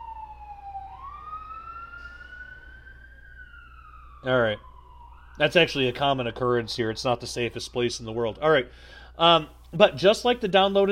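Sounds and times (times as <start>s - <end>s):
emergency vehicle siren wailing on a downtown Memphis street: 0.0s - 8.4s
speech: 4.2s - 4.7s, 5.4s - 10.9s.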